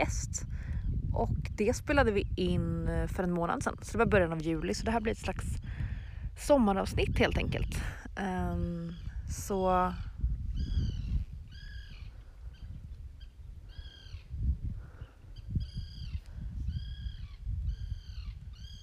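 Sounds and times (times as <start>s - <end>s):
speech: 0.0s - 0.4s, 1.2s - 5.6s, 6.4s - 10.1s
low rumble of wind: 0.0s - 18.8s
birds calling outdoors with crow-like bursts: 10.5s - 14.4s, 15.0s - 18.8s.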